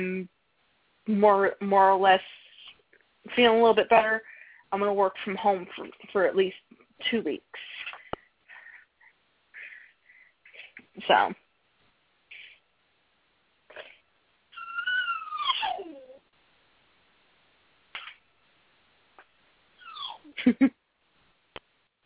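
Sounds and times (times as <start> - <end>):
speech: 1.1 - 2.4, 3.2 - 7.7, 11.0 - 11.4, 20.4 - 20.8
dog lying in a room whimpering: 14.5 - 16.2, 19.8 - 20.4.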